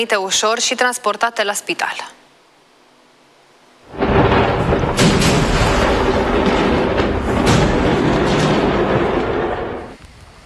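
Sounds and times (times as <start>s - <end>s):
speech: 0.0s - 2.2s
fireworks factory explosion in Malta: 3.9s - 10.0s.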